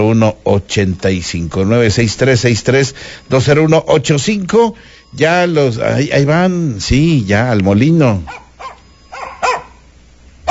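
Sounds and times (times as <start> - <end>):
speech: 0.0 - 8.4
dogs barking at people passing by: 8.3 - 10.4.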